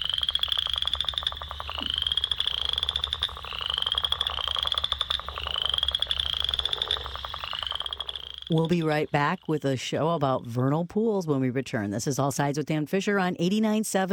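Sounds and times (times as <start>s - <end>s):
western chorus frog calling in trilling bursts: 0.0s - 10.0s
speech: 8.5s - 14.1s.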